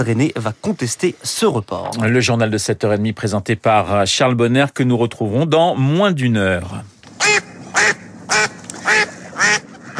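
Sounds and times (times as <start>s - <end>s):
speech: 0.0s - 6.9s
ducks quacking: 7.2s - 9.9s.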